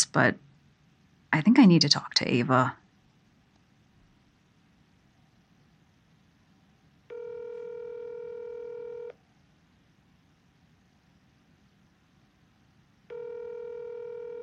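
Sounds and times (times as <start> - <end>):
speech: 0.0 - 0.5, 1.3 - 2.8
telephone tones on a landline call that cannot be completed: 7.1 - 9.1, 13.1 - 14.4.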